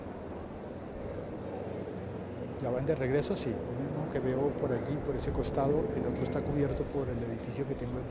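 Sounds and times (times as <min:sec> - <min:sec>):
two helicopters flying overhead: 0:00.1 - 0:08.0
speech: 0:02.6 - 0:08.0.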